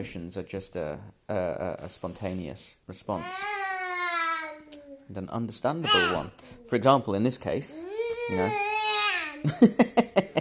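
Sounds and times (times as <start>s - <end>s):
speech: 0.0s - 3.6s, 5.1s - 8.7s, 9.4s - 10.3s
noisy infant babbling: 3.1s - 5.1s, 5.8s - 6.9s, 7.7s - 9.5s
laughter: 9.4s - 10.3s.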